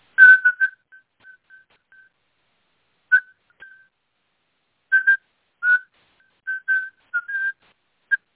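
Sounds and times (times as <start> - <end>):
young man whistling a Morse code CQ call: 0.2 - 2.1, 3.1 - 3.9, 4.9 - 8.2.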